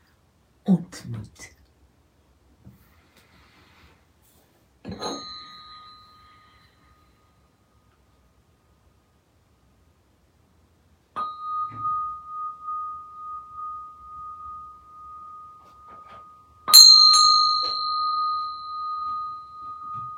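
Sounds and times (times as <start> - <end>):
speech: 0.7 - 1.5
bell ringing: 4.9 - 7.2, 11.2 - 20.1.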